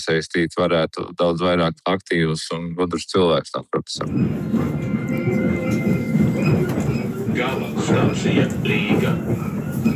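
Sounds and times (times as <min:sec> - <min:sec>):
speech: 0:00.0 - 0:05.3, 0:07.4 - 0:09.9
train rumbling at a railway station: 0:04.0 - 0:09.9.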